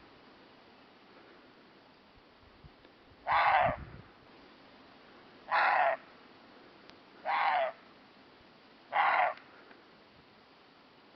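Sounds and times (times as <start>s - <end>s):
roe deer barking: 3.3s - 3.8s, 5.5s - 6.0s, 7.2s - 7.8s, 8.9s - 9.4s.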